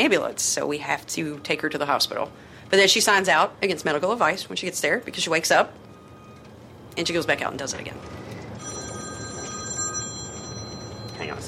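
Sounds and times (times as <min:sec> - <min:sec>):
speech: 0:00.0 - 0:05.9, 0:07.0 - 0:08.2
low hum: 0:00.0 - 0:11.4
cell phone ringing: 0:08.6 - 0:11.4.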